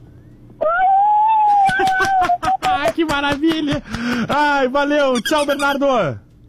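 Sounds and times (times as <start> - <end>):
child imitating a wolf howl: 0.6 - 2.2
laughter: 1.5 - 4.6
speech: 3.2 - 6.3.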